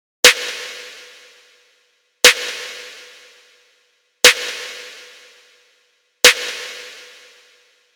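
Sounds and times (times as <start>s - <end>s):
wet snare drum: 0.2s - 1.6s, 2.2s - 3.6s, 4.2s - 5.6s, 6.2s - 7.6s.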